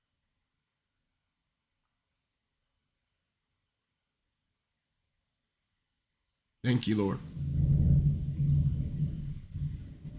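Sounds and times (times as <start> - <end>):
speech: 6.6 - 7.6
thunder rumbling: 7.2 - 10.1.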